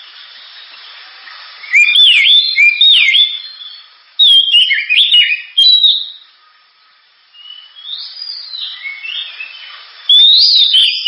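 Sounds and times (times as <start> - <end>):
Oriental magpie-robin singing with looping whistles: 1.6 - 6.2, 7.4 - 11.0.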